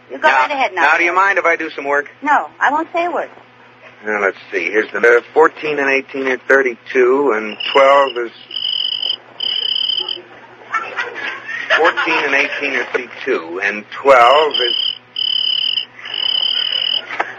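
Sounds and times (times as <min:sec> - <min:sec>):
speech: 0:00.1 - 0:03.4, 0:04.0 - 0:08.6, 0:11.8 - 0:14.8
cricket chirping in high-pitched bursts: 0:07.4 - 0:10.2, 0:14.3 - 0:17.1
person laughing and chuckling: 0:10.0 - 0:12.8, 0:16.0 - 0:17.3.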